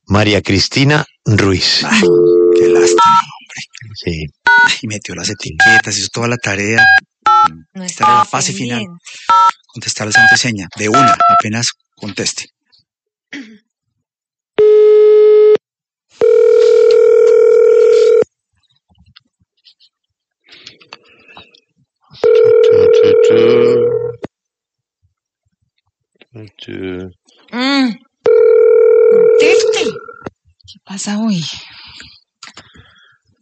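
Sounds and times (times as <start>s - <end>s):
voice sounds: 0.2s - 6.8s, 7.5s - 9.3s, 10.4s - 12.4s, 22.2s - 24.1s, 26.3s - 28.0s, 29.4s - 30.3s
speech: 0.2s - 12.6s, 22.2s - 24.2s, 26.3s - 28.1s, 29.1s - 30.1s, 30.8s - 32.9s
throat clearing: 13.3s - 13.7s
telephone ringback tone of an unanswered call: 14.6s - 15.6s, 16.2s - 18.2s, 22.2s - 24.2s, 28.3s - 30.0s.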